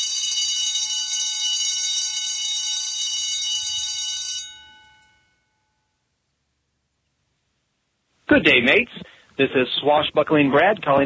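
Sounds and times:
loud bright bell ringing rapidly: 0.0s - 5.9s
speech: 8.3s - 11.0s.

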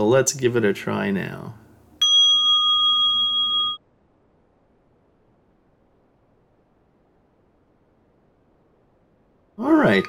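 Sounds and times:
speech: 0.0s - 1.6s, 9.9s - 10.0s
meditation bell ringing: 2.0s - 3.8s.

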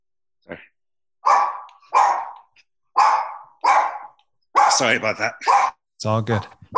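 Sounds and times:
dog barking: 1.2s - 5.8s
speech: 4.8s - 6.7s.

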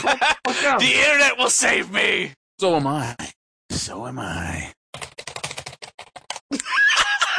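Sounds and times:
laughter: 0.0s - 0.9s, 6.5s - 7.3s
speech: 0.0s - 3.2s, 3.8s - 5.1s
computer keyboard typing: 4.9s - 6.4s.

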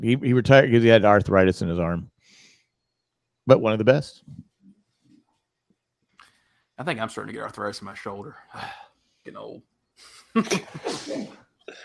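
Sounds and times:
speech: 0.0s - 2.1s, 3.5s - 4.5s, 6.8s - 11.8s
person sneezing: 10.4s - 11.8s.

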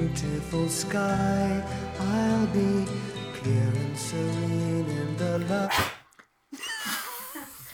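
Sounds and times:
speech: 0.2s - 5.9s
sneeze with a noisy breathy tail: 5.7s - 7.7s.

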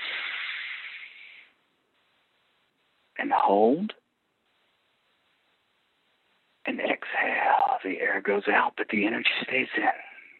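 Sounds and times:
deep inhalation during a guided breathing exercise: 0.0s - 1.6s
speech: 3.2s - 4.0s, 7.8s - 10.1s.

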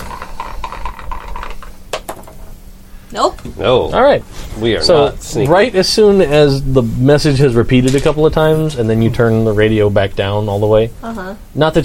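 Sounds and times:
dice rolling in a tabletop game: 0.0s - 2.4s
low hum: 0.0s - 11.8s
speech: 3.1s - 11.8s.

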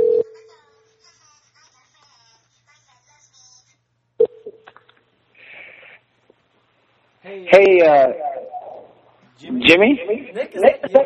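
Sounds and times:
telephone ringing: 0.0s - 0.4s
speech: 7.3s - 8.2s, 9.4s - 11.0s
trailing chirpy warbles: 8.1s - 9.0s.

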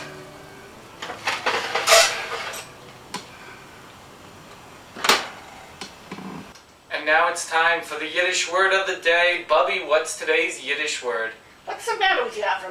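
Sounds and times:
metal pan with liver clanking under a preheated broiler: 1.0s - 2.8s
speech: 7.1s - 12.7s.

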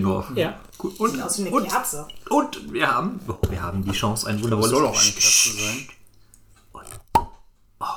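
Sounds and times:
speech: 0.0s - 6.0s
cork popping out of a bottle: 3.2s - 7.5s.

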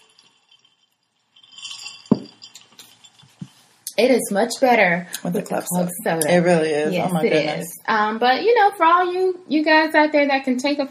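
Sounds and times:
glasses clinking in a toast: 0.0s - 3.7s
speech: 4.0s - 10.9s.

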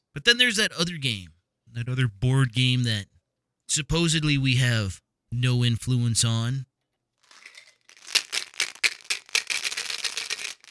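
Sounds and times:
speech: 0.2s - 3.1s, 3.7s - 6.7s
dice rattling in a cup: 7.2s - 10.7s.

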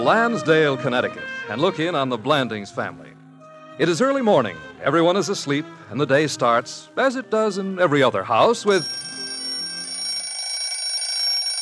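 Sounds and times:
speech: 0.0s - 3.2s, 3.8s - 9.1s
mechanical alarm clock bell ringing: 8.7s - 11.5s.

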